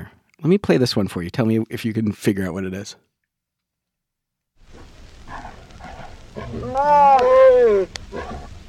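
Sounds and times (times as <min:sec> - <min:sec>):
speech: 0:00.0 - 0:03.1, 0:06.4 - 0:08.2
rustling: 0:04.6 - 0:08.6
mating tiger growling roar: 0:05.3 - 0:08.6.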